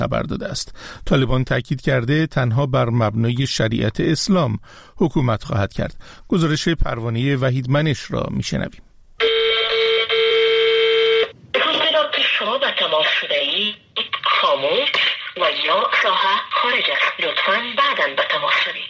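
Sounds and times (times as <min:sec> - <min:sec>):
speech: 0:00.0 - 0:08.9, 0:12.4 - 0:18.8
steady telephone tone: 0:09.2 - 0:11.4
recorded woman's voice filtered over a phone line: 0:11.5 - 0:18.8.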